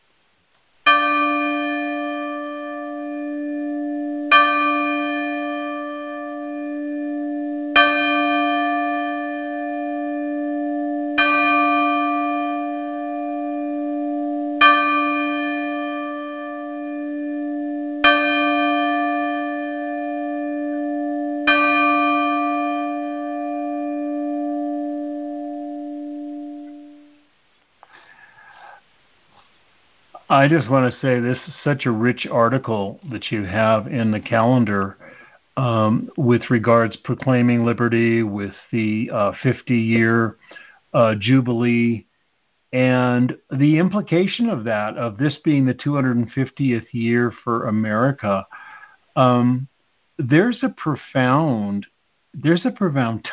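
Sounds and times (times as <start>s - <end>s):
deep temple bell ringing: 0.9s - 27.1s
speech: 30.4s - 35.0s, 35.6s - 42.1s, 42.7s - 48.6s, 49.2s - 53.3s.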